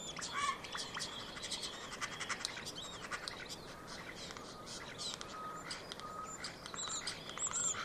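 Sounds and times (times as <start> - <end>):
common starling whistles and clicking rattles: 0.1 - 7.8.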